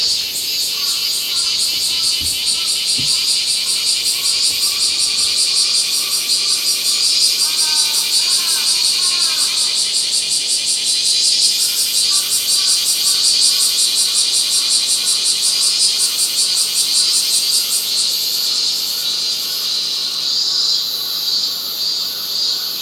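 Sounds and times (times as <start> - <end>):
bear cicada giving shrill pulsing buzz: 0.0 - 22.8.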